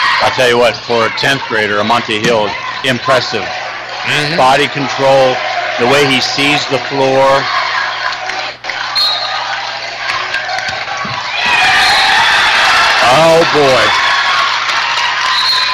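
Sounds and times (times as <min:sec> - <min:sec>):
gym crowd cheering: 0:00.0 - 0:15.7
speech: 0:00.2 - 0:07.7, 0:13.1 - 0:14.0
man exclaiming: 0:04.1 - 0:04.6.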